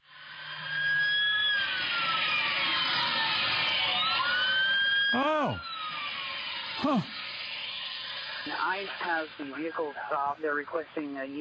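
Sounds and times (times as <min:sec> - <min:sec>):
several police sirens wailing: 0:00.8 - 0:06.2, 0:06.8 - 0:07.2
speech: 0:06.8 - 0:07.2, 0:08.7 - 0:11.3.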